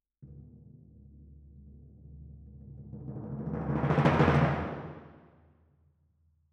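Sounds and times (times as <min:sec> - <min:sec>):
timpani: 0:00.2 - 0:05.2.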